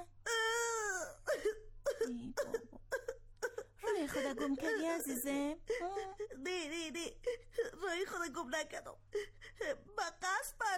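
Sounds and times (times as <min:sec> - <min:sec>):
child crying in a wavering wail and sobbing whimpers: 0:00.0 - 0:04.9, 0:05.7 - 0:08.1
speech: 0:04.1 - 0:10.7.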